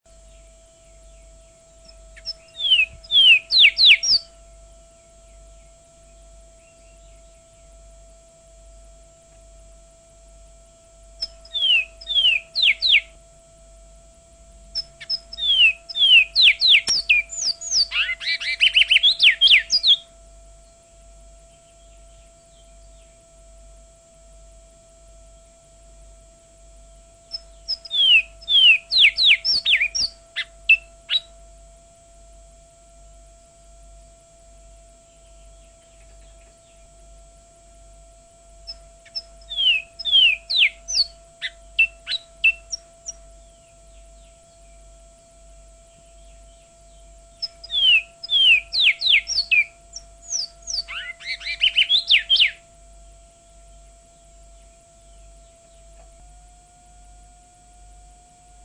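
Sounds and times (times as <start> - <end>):
Surinamese twa-twa songbird singing: 0.0 - 58.6.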